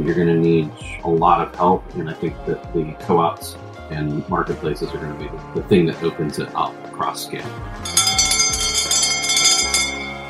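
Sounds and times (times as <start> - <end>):
speech: 0.0 - 7.9
bell struck loudly with bright metallic overtones: 7.8 - 10.2.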